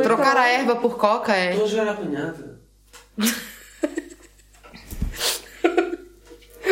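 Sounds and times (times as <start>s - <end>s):
speech: 0.1s - 2.5s, 3.2s - 4.0s
cats scampering and tussling while playing chase: 4.7s - 5.4s.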